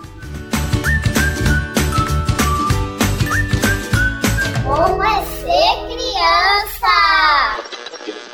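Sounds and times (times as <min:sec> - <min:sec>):
high whistle-like melody: 0:00.0 - 0:04.8
bouncy children's song: 0:04.2 - 0:07.8.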